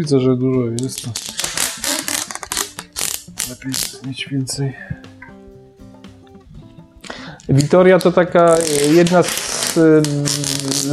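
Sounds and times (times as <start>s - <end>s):
speech: 0.0s - 1.4s, 3.5s - 5.1s, 7.5s - 10.9s
adhesive tape pulled off a roll and applied: 0.8s - 4.0s, 7.5s - 10.9s.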